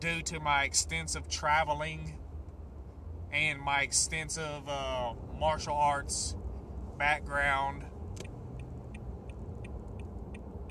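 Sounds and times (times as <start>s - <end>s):
speech: 0.0s - 2.2s, 3.3s - 6.4s, 7.0s - 8.3s
low rumble of a car driving on the road heard from inside: 0.0s - 10.7s
car turn signal clicking: 8.1s - 10.7s.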